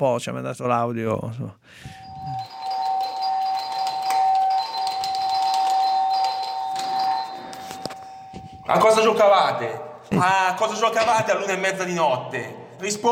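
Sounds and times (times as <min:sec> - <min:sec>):
speech: 0:00.0 - 0:02.5, 0:08.7 - 0:13.1
electronic doorbell ringing at a neighbour's door: 0:01.9 - 0:09.1.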